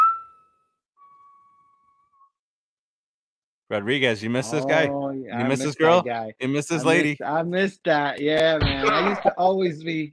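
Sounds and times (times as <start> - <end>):
bright high-pitched whistle sound effect: 0.0 - 2.4
speech: 3.7 - 10.1.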